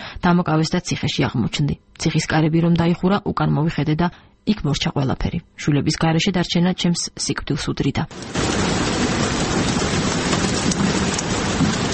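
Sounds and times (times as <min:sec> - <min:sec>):
speech: 0:00.2 - 0:09.1
rain sound played from a loudspeaker installed in a room: 0:08.1 - 0:11.9.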